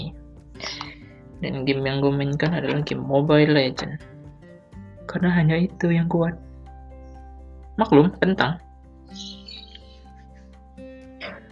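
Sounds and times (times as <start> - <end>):
speech: 1.4 - 4.1, 5.1 - 6.5, 7.8 - 9.4
birds chirping: 9.1 - 10.4.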